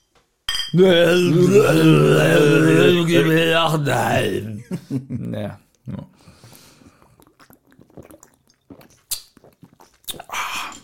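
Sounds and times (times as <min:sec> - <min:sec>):
glass cola bottles clinking together in a toast: 0:00.5 - 0:00.9
speech: 0:00.7 - 0:06.3.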